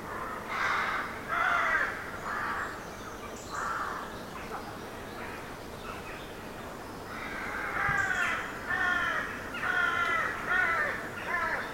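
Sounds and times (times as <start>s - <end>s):
many rooks cawing in trees: 0.0s - 2.8s, 3.5s - 4.1s, 7.1s - 11.7s.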